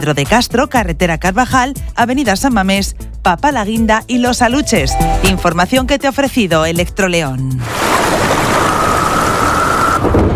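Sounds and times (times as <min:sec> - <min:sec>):
speech: 0:00.0 - 0:08.3
heavy rain in a thunderstorm: 0:07.6 - 0:10.3.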